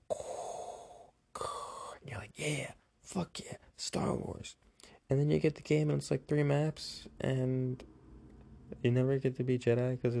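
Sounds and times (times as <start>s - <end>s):
voice imitating heavy mechanical respirator breathing: 0.0s - 2.7s
speech: 1.4s - 7.9s, 8.7s - 10.1s.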